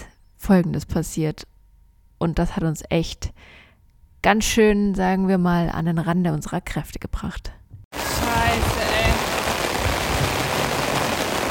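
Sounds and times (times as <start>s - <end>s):
speech: 0.5s - 1.5s, 2.2s - 3.6s, 4.2s - 7.6s
pouring rain: 7.9s - 11.4s.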